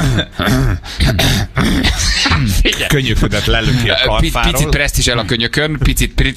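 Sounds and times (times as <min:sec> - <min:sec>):
voice imitating throat clearing and coughing: 0:00.0 - 0:03.8
speech: 0:00.0 - 0:06.3.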